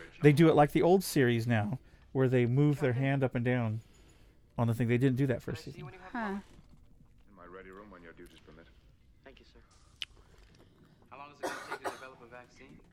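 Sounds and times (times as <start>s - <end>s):
speech: 0.2s - 3.9s, 4.6s - 6.5s
person clearing throat: 11.4s - 12.2s
person coughing: 11.4s - 12.2s.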